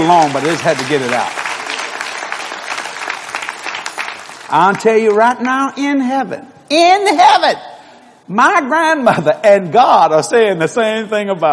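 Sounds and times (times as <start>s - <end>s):
church congregation clapping in applause: 0.0s - 5.7s
speech: 0.1s - 1.4s, 4.5s - 7.7s, 8.3s - 11.5s.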